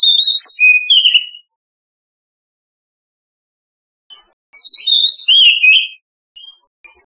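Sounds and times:
Oriental magpie-robin whistled song: 0.0 - 1.6, 4.1 - 7.1.

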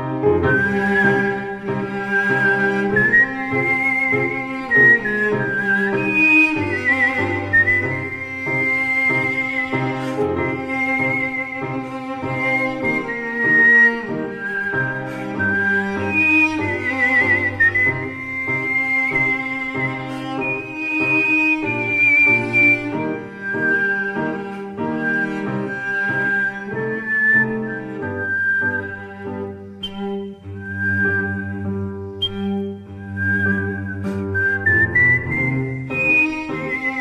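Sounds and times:
whistling sextet performing a slow classical andante: 0.0 - 36.9.

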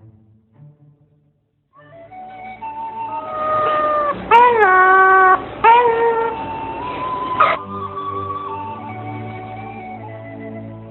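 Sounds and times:
Asian pied starling giving drawn-out rich harmonic notes: 1.8 - 10.0.

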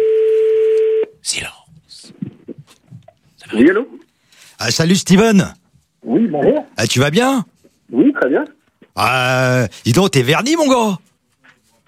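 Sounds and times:
telephone tone as a call is placed: 0.0 - 1.1
speech: 3.6 - 4.0, 4.6 - 11.1
faint breathy sounds: 4.1 - 4.6.

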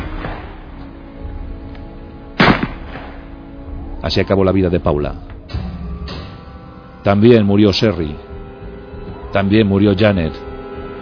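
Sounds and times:
rifle shots: 2.4 - 3.3
speech: 4.0 - 5.3, 7.0 - 8.3, 9.3 - 10.4.

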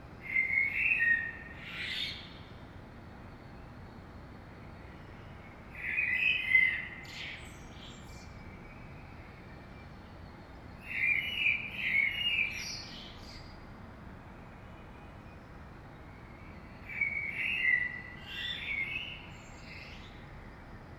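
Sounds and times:
common blackbird song in the early morning: 0.2 - 2.6, 4.6 - 13.6, 15.3 - 20.4.

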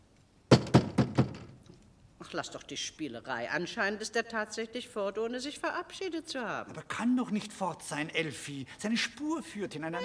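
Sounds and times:
knocking signals rapped on a door: 0.5 - 1.6
speech: 2.3 - 10.0.

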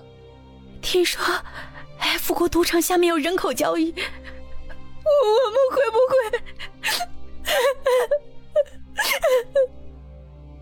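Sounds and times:
speech: 0.9 - 4.3, 5.1 - 8.3, 9.2 - 9.7
girl crying in a dark cage: 4.1 - 9.8.

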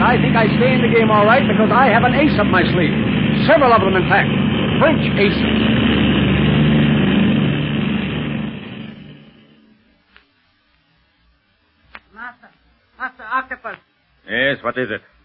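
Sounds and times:
airplane engine droning as the plane climbs: 0.0 - 10.0
speech: 0.1 - 6.0, 13.6 - 15.2.

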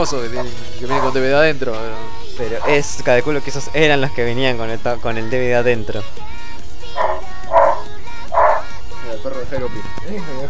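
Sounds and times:
speech: 0.0 - 6.3, 9.2 - 10.4
dog barking: 0.4 - 1.2, 2.6 - 2.9, 6.9 - 8.8.

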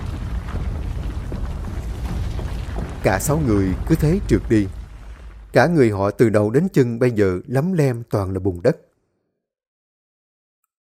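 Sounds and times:
large fire-bomb explosion collapsing part of a tunnel: 0.0 - 6.9
speech: 3.0 - 4.8, 5.5 - 8.9.

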